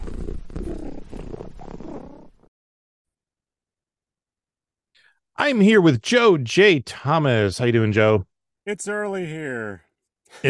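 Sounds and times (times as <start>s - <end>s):
cat purring: 0.0s - 2.5s
speech: 5.4s - 10.4s.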